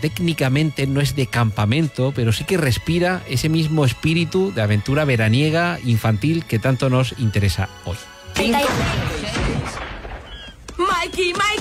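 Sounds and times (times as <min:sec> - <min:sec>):
speech: 0:00.0 - 0:09.8, 0:11.0 - 0:11.5
sharp loud gunshots in a film scene: 0:08.4 - 0:10.6.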